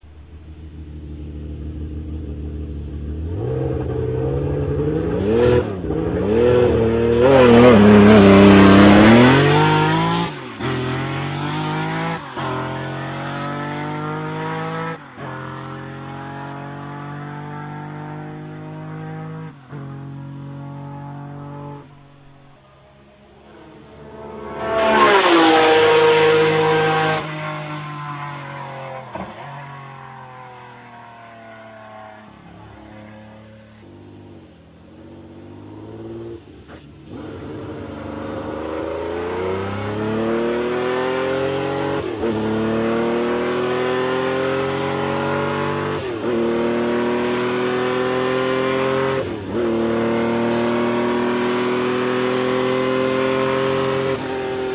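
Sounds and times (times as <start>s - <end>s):
Ferrari 512S race car engine: 0.0s - 54.7s.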